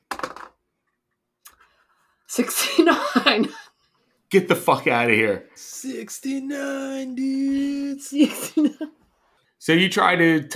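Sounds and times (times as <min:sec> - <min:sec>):
dice tumbling on a hard surface: 0:00.1 - 0:00.6
speech: 0:02.3 - 0:03.6, 0:04.3 - 0:09.0, 0:09.6 - 0:10.5.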